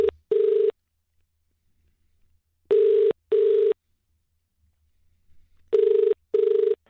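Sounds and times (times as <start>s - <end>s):
ringback tone of a telephone calling a cake shop: 0.0s - 0.7s, 2.7s - 3.8s, 5.8s - 6.8s.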